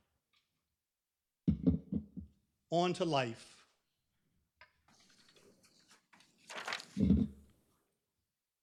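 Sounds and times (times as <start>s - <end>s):
speech: 2.7s - 3.6s
faint clicks and rustles: 4.6s - 7.0s.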